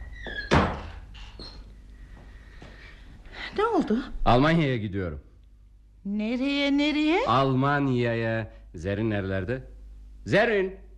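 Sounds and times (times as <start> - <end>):
faint creak of a door hinge: 0.0 - 1.7
door swinging shut with a solid thunk: 0.2 - 1.0
speech: 3.6 - 5.3, 6.0 - 10.8.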